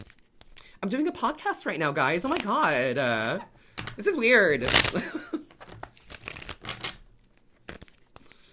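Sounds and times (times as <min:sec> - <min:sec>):
deck of cards being shuffled: 0:00.0 - 0:00.7, 0:02.2 - 0:02.6, 0:04.6 - 0:08.4
speech: 0:00.8 - 0:05.4.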